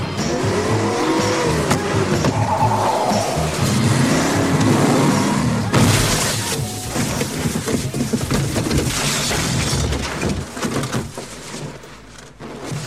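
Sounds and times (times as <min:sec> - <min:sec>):
car tires squealing in a skid: 0:00.0 - 0:08.0
car engine roaring: 0:00.0 - 0:09.6
rumbling and clatter of car going into a ravine: 0:00.0 - 0:12.8
car careening off the road into a ravine: 0:00.2 - 0:11.7.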